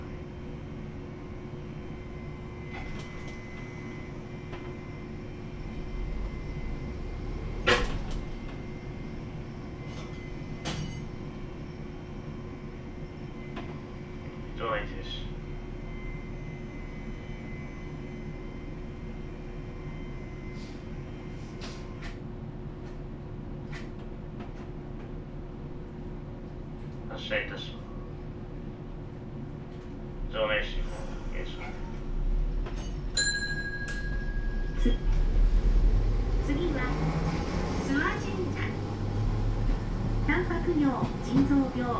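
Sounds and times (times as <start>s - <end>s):
tram pulling away and rolling forward, heard from inside: 0.0s - 41.9s
speech: 40.8s - 41.9s.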